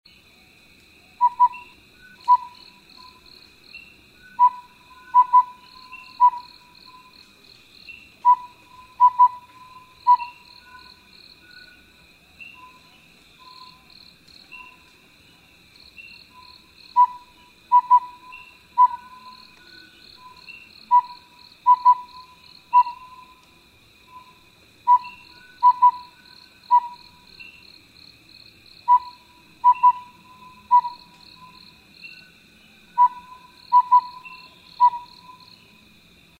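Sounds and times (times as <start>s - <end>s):
collared owlet calling: 1.2s - 3.3s, 4.3s - 7.2s, 8.2s - 11.8s, 16.1s - 23.5s, 24.1s - 27.6s, 28.8s - 32.2s, 33.0s - 35.6s.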